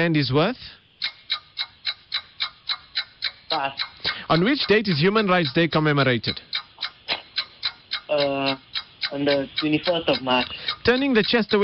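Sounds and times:
speech: 0.0s - 1.2s, 3.5s - 6.6s, 8.2s - 11.6s
clock ticking as a quiz timer: 0.0s - 11.6s.

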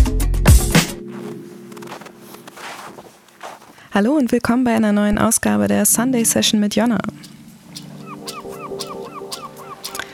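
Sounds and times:
speech: 4.0s - 7.4s
seagulls calling: 6.2s - 10.1s.

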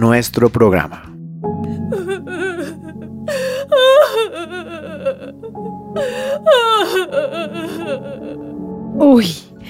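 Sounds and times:
speech: 0.0s - 2.1s, 9.0s - 9.4s
person wailing and sobbing sadly: 1.8s - 8.6s.

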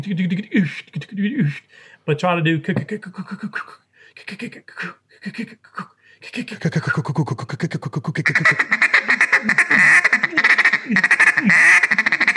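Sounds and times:
speech: 0.0s - 9.9s
brief voice-like sounds: 3.0s - 8.6s
blown duck call feed call chatter imitating mallards: 8.1s - 12.3s.

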